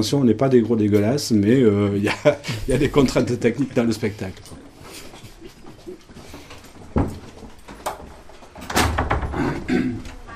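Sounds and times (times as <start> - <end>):
speech: 0.0 - 4.6
murky background of indistinct noise: 0.0 - 10.3
heavy fire door in a theatre swinging shut: 8.6 - 9.7.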